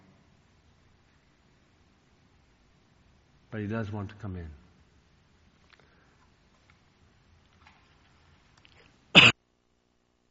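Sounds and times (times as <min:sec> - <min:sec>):
speech: 0:03.5 - 0:04.6
speaker clearing throat with a forceful cough: 0:09.2 - 0:09.4.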